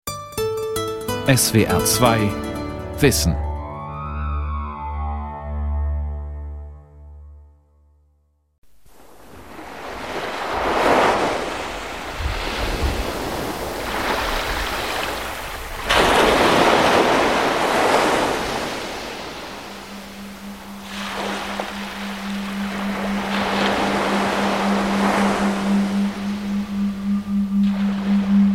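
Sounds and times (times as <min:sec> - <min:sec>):
musical intro: 0:00.1 - 0:07.9, 0:19.8 - 0:28.5
Atlantic ocean surf rolling onto shore: 0:01.2 - 0:03.4, 0:08.8 - 0:28.5
speech: 0:01.3 - 0:02.4, 0:03.0 - 0:03.4.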